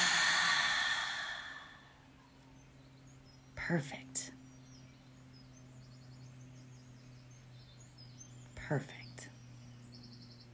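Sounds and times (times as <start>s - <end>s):
deep breath in through the nose, then released: 0.0s - 1.9s
speech: 3.7s - 4.4s, 8.7s - 9.0s.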